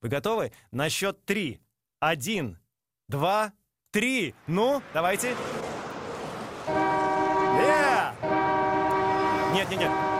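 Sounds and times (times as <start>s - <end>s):
speech: 0.0s - 5.6s, 9.5s - 10.1s
multi-tone car horn blaring: 6.6s - 10.1s.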